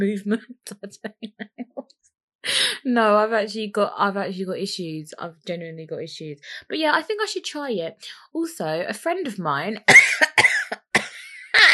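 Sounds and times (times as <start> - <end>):
speech: 0.0 - 1.5, 2.4 - 10.4
harsh coughs: 9.9 - 11.7.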